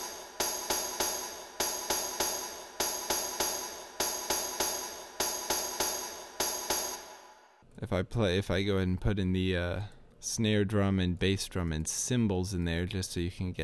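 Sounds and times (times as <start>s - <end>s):
tambourine rhythm: 0.0s - 7.5s
speech: 7.8s - 13.6s.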